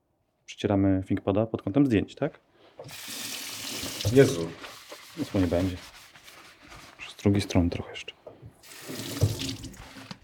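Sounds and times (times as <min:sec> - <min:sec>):
speech: 0:00.5 - 0:03.2, 0:04.0 - 0:06.0, 0:07.2 - 0:08.2
kitchen sink tap water splashing over a laptop: 0:02.8 - 0:05.0, 0:08.3 - 0:10.2.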